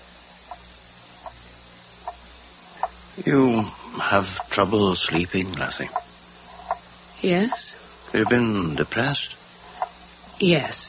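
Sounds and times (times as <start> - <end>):
low constant hum: 0.0 - 10.8
grandfather clock ticking in a book-lined office: 2.8 - 9.1
speech: 3.2 - 6.0, 7.2 - 9.4, 10.4 - 10.8.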